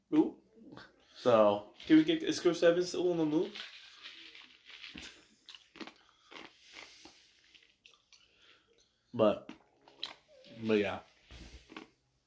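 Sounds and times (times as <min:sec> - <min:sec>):
speech: 0:01.2 - 0:03.8, 0:09.2 - 0:09.5, 0:10.6 - 0:11.1
crunching bites: 0:03.5 - 0:07.1.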